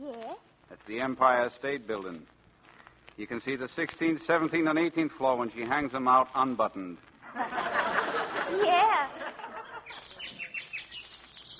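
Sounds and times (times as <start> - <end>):
speech: 0.8 - 2.4, 3.2 - 9.2
laughter: 7.2 - 10.4
alarm clock with bird-like chirping: 9.8 - 11.5.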